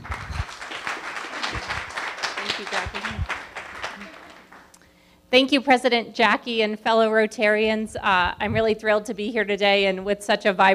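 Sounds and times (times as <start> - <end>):
crowd clapping: 0.0 - 4.8
murmuring voices: 0.1 - 4.6
speech: 2.6 - 3.4, 5.3 - 10.7.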